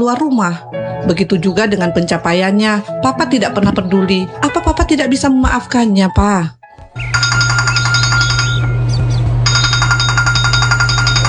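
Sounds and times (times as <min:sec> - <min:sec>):
speech: 0:00.0 - 0:07.2
telephone ringing in bright warbling electronic bursts: 0:07.0 - 0:08.8, 0:09.4 - 0:11.2.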